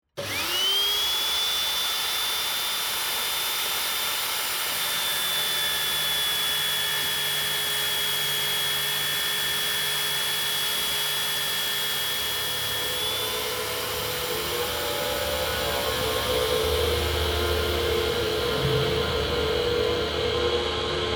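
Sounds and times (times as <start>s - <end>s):
industrial noise: 0.2s - 21.0s.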